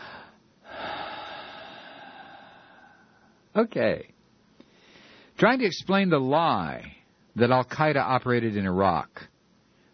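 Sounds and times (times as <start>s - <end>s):
deep breath: 0.0s - 3.5s, 4.6s - 5.4s
speech: 3.6s - 4.2s, 5.4s - 9.3s.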